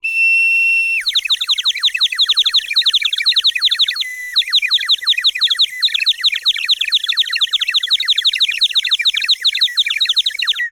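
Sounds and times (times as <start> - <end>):
painted clay water bird whistle: 0.0 - 10.7.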